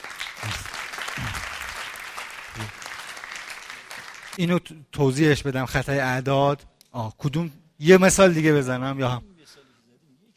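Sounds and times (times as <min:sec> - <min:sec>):
audience applause: 0:00.0 - 0:04.4
low vocal sounds: 0:00.4 - 0:01.7, 0:02.5 - 0:02.8
speech: 0:04.4 - 0:09.3.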